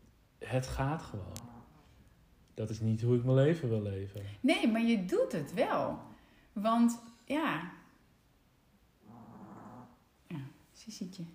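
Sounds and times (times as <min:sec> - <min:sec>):
speech: 0:00.4 - 0:01.6, 0:02.6 - 0:07.8, 0:10.8 - 0:11.3
dog snoring softly: 0:09.0 - 0:10.0.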